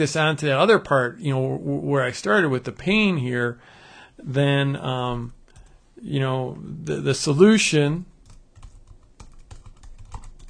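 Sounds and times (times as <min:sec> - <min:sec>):
speech: 0:00.0 - 0:05.4, 0:06.0 - 0:08.1
typing on a computer keyboard: 0:08.2 - 0:10.4.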